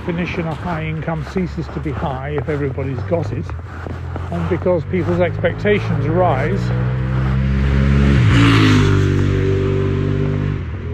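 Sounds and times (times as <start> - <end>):
speech: 0.0 - 7.0
motorbike engine roaring past: 4.2 - 10.9.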